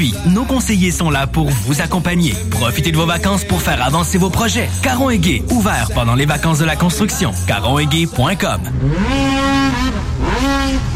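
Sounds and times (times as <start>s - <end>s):
speech: 0.0s - 10.9s
snowmobile racing engines roaring at a provincial watercross championship on water: 7.9s - 10.9s.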